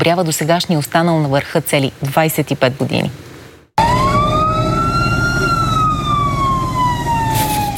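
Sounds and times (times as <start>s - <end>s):
speech: 0.0s - 3.9s
constant low engine rumble: 3.8s - 7.7s
emergency-vehicle siren wailing at airport water-cannon salute: 3.8s - 7.7s.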